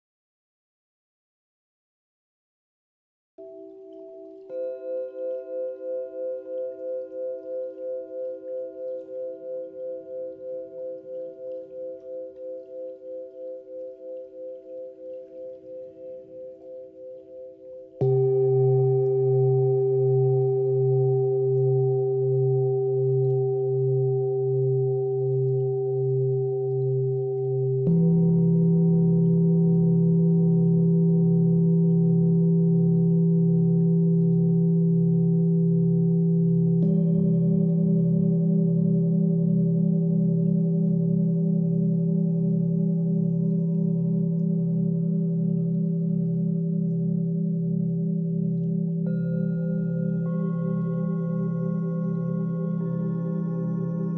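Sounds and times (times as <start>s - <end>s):
singing bowls ringing: 3.4s - 54.1s
person chanting OM: 18.0s - 54.1s.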